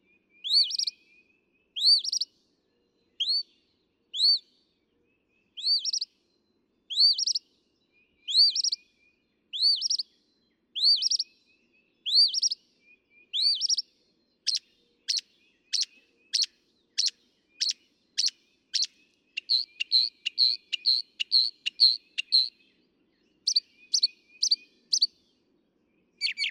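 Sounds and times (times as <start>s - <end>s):
northern mockingbird song: 0.1s - 26.4s.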